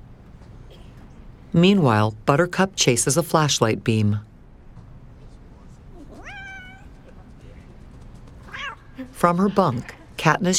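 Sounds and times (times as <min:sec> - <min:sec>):
speech: 0:01.5 - 0:04.3, 0:09.2 - 0:10.5
cat meowing: 0:06.0 - 0:07.0, 0:08.4 - 0:08.9.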